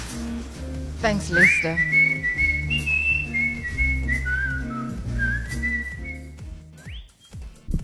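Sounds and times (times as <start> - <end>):
rhythmic musical backing: 0.0 - 7.8
speech: 1.0 - 2.8
person whistling a bright melody: 1.2 - 7.5.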